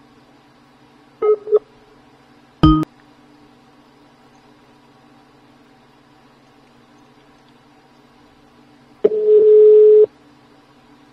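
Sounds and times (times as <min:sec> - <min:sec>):
steady mid-pitched telephone busy tone: 0:09.1 - 0:10.1.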